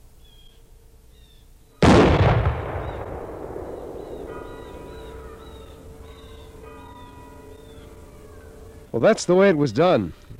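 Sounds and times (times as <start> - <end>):
percussion-cap musket firing: 1.8 - 5.2
speech: 9.0 - 10.3.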